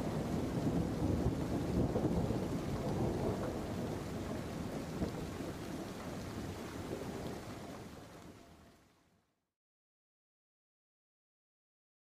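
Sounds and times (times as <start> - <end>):
deep rumbling thunder: 0.0 - 7.4
heavy steady rain in a thunderstorm: 0.0 - 8.9.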